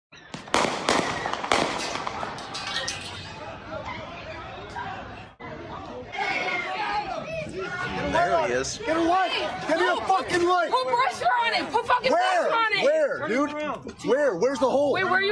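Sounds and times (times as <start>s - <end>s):
crowd chatter and shouting: 0.2s - 15.3s
gunshots in a played video clip: 0.3s - 3.2s
speech: 8.6s - 15.3s.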